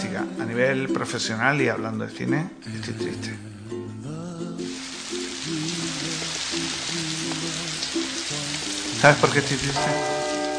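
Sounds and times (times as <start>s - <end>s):
faint low soft melody: 0.0s - 10.5s
speech: 0.1s - 4.2s, 9.0s - 10.2s
steady dense rain: 4.6s - 10.5s.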